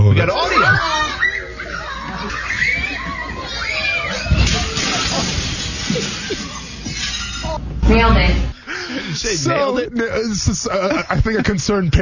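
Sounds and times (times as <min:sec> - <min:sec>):
laughter: 0:00.0 - 0:07.7, 0:08.6 - 0:11.9
excited voices and shrieks from a crowd at a kid's birthday party: 0:00.0 - 0:08.0
speech: 0:00.2 - 0:00.9, 0:09.2 - 0:11.9
giant glass window shattering as a devil mascot runs through it: 0:04.3 - 0:07.4.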